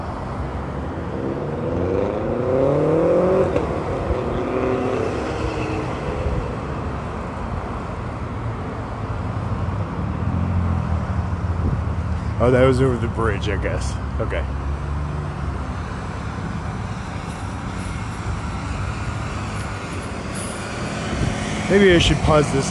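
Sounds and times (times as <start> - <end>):
steady rumble of traffic noise: 0.0 - 22.6
motorcycle accelerating past: 1.2 - 6.2, 18.7 - 22.6
speech: 12.4 - 14.6, 21.7 - 22.6.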